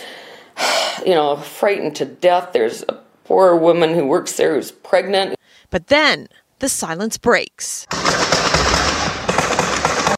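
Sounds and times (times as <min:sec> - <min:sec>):
speech: 0:01.0 - 0:08.2
harsh noisy background: 0:07.9 - 0:10.1
loud dense barrage of rapid gunshots: 0:07.9 - 0:10.1.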